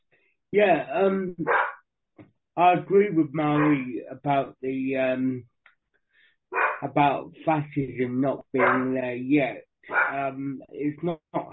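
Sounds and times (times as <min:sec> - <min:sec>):
speech: 0:00.5 - 0:01.7, 0:02.6 - 0:05.5, 0:06.5 - 0:11.5
dog barking: 0:01.4 - 0:01.8, 0:03.6 - 0:03.8, 0:06.6 - 0:06.8, 0:08.6 - 0:09.0, 0:09.9 - 0:10.2.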